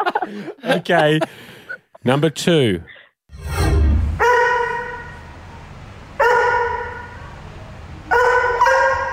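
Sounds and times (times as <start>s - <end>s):
laughter: 0.0s - 2.0s
speech: 0.3s - 3.8s
dog barking: 4.2s - 5.2s, 6.2s - 7.1s, 8.1s - 9.1s.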